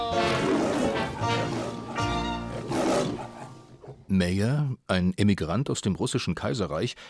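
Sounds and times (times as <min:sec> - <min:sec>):
lion roaring: 0:00.1 - 0:04.1
speech: 0:04.2 - 0:07.0.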